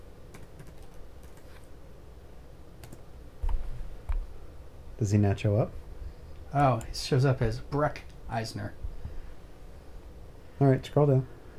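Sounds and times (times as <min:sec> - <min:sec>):
soft typing on a computer keyboard: 0:00.3 - 0:01.7, 0:02.8 - 0:03.0
speech: 0:05.0 - 0:05.8, 0:06.5 - 0:08.8, 0:10.6 - 0:11.4.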